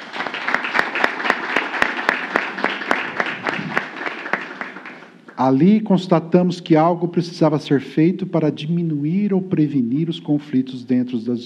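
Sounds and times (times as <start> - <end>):
audience applause: 0.0 - 5.4
speech: 5.4 - 11.4.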